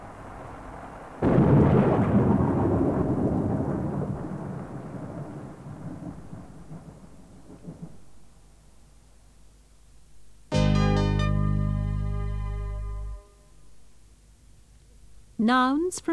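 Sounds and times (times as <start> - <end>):
thunder crack and rumble: 0.0 - 8.1
steady rain: 0.0 - 10.5
short bright musical tone: 10.5 - 13.4
speech: 15.4 - 16.1.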